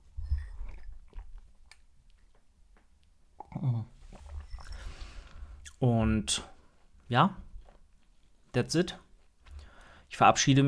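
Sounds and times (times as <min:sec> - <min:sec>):
sipping tea from a cup: 0:03.4 - 0:05.8
speech: 0:05.8 - 0:06.5, 0:07.1 - 0:07.4, 0:08.5 - 0:09.0, 0:10.2 - 0:10.6.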